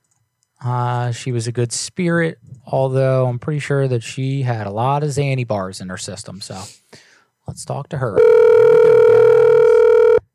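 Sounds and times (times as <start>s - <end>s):
speech: 0.6s - 9.0s
outgoing phone call ringback tone: 8.2s - 10.3s.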